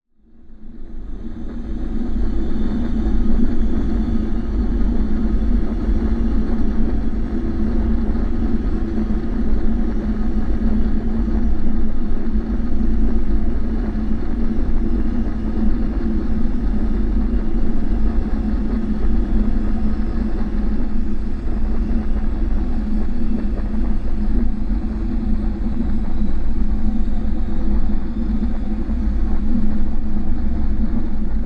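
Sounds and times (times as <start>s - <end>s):
dark rumbling ambience: 0.2s - 31.4s.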